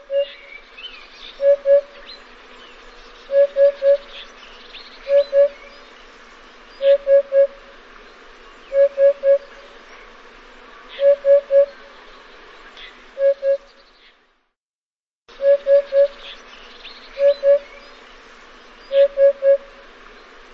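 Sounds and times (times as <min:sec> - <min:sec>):
bird hooting low pure whistled notes: 0:00.0 - 0:00.5, 0:01.4 - 0:02.1, 0:03.3 - 0:04.3, 0:05.0 - 0:05.7, 0:06.8 - 0:07.6, 0:08.7 - 0:09.6, 0:11.0 - 0:11.8, 0:13.2 - 0:13.7, 0:15.4 - 0:16.4, 0:17.2 - 0:17.9, 0:18.9 - 0:19.8.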